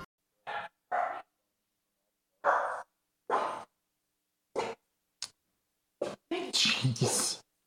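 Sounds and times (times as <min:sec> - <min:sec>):
small dachshund barking in short sharp yaps: 0:00.5 - 0:01.3, 0:02.4 - 0:03.7
speech: 0:06.5 - 0:07.5.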